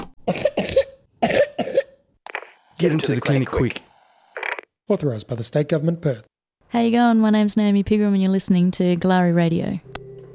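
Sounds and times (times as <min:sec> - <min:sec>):
woman with a four-week wet chesty cough coughing: 0:00.2 - 0:02.0
speech: 0:02.8 - 0:03.9, 0:04.9 - 0:09.9.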